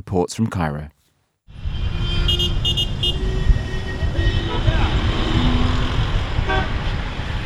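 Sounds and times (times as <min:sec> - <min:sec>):
speech: 0:00.0 - 0:01.0
dense city traffic rumbling: 0:01.5 - 0:07.4
car horns honking: 0:01.6 - 0:07.0.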